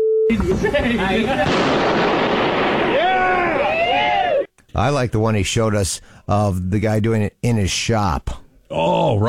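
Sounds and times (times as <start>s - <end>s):
brief tone: 0.0s - 0.3s
loud explosion with roaring rumble: 0.4s - 3.8s
speech: 0.5s - 2.0s, 4.8s - 9.2s
excited voices shouting: 2.9s - 4.5s.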